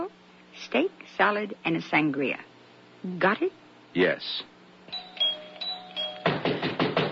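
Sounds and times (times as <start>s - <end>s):
speech: 0.1s - 4.5s
faint ringing tone: 4.9s - 6.4s
heavy pounding on a door: 6.2s - 7.1s.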